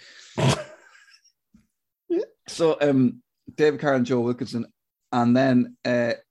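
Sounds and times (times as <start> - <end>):
throat clearing: 0.4 - 0.9
speech: 2.6 - 6.2.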